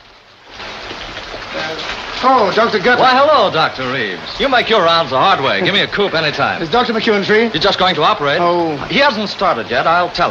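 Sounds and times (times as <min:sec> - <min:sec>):
rain on the corrugated roof of a hospital on a U.S. military base: 0:00.0 - 0:10.2
speech: 0:01.7 - 0:10.2.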